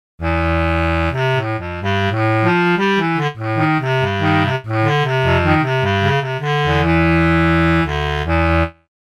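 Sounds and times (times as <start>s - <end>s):
bass clarinet: 0.2s - 8.9s.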